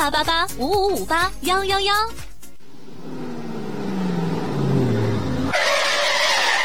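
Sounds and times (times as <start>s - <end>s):
speech: 0.0s - 2.3s
car engine droning: 1.4s - 6.6s
car tires screeching as it brakes hard and skids: 2.4s - 6.6s.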